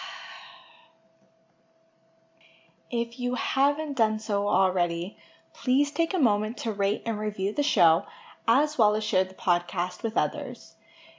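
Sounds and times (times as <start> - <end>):
long exhale during a guided breathing exercise: 0.0 - 0.9
speech: 2.9 - 10.8.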